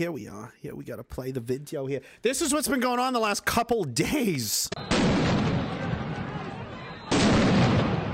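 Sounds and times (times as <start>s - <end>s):
speech: 0.0s - 5.6s
crackling bursts: 4.7s - 8.1s
explosions at a street protest: 4.8s - 8.1s.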